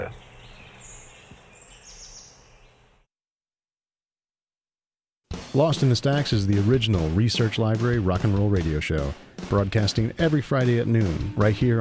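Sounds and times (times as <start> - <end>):
faint high forest bird chirps and whistled calls: 0.0 - 2.8
soft hissy outdoor background: 0.0 - 3.1
speech: 5.5 - 11.7.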